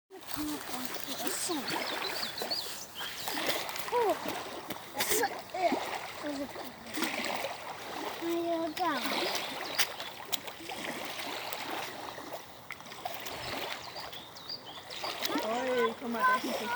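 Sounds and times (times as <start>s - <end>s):
children: 0.1s - 10.0s, 15.0s - 16.7s
waves: 0.1s - 16.7s.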